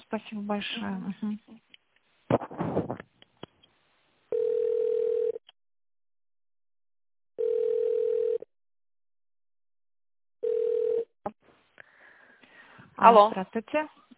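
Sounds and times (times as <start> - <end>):
speech: 0.1 - 1.7, 13.0 - 14.0
telephone ringback tone while a call is transferred to another department: 4.3 - 5.4, 7.4 - 8.5, 10.4 - 11.1.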